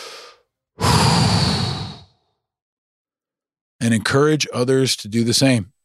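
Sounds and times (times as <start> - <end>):
slow deep breath in and long airy exhale: 0.0 - 2.4
speech: 3.8 - 5.7.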